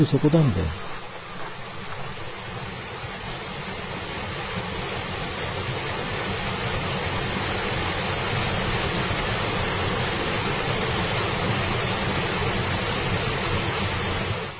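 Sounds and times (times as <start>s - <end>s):
speech: 0.0s - 1.0s
waterfall roaring: 0.0s - 14.5s.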